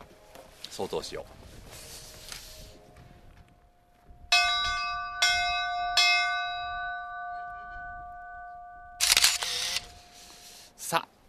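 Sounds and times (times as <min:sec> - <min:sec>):
speech: 0:00.8 - 0:01.4
departure bell ringing: 0:04.3 - 0:10.4
camera shutter clicks: 0:09.0 - 0:10.1.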